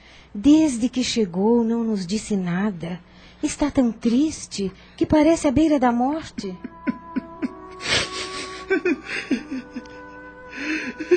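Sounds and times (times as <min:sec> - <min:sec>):
speech: 0:00.3 - 0:06.7
laughter: 0:06.4 - 0:11.1
man crying with gasping sobs and shaky whimpers: 0:06.5 - 0:11.1.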